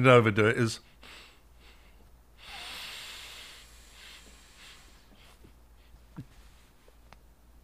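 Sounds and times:
two people doing slow deep breathing exercise: 0:00.8 - 0:06.8.

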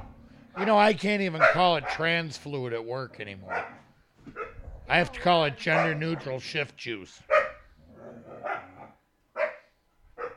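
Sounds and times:
dog barking: 0:00.6 - 0:00.8, 0:01.4 - 0:02.1, 0:03.5 - 0:04.6, 0:05.6 - 0:06.4, 0:07.3 - 0:07.7, 0:08.4 - 0:10.3
speech: 0:00.6 - 0:07.3.

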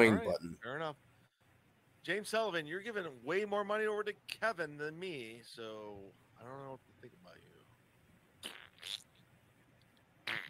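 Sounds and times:
speech: 0:00.0 - 0:01.1, 0:02.0 - 0:07.5
fart noises: 0:08.4 - 0:09.2, 0:10.2 - 0:10.4.

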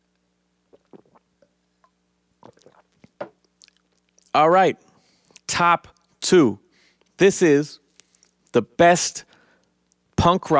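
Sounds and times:
person sipping and swallowing water: 0:00.6 - 0:04.3, 0:05.2 - 0:06.1
speech: 0:04.4 - 0:04.9, 0:05.6 - 0:06.6, 0:07.2 - 0:07.8, 0:08.5 - 0:09.3, 0:10.2 - 0:10.5.

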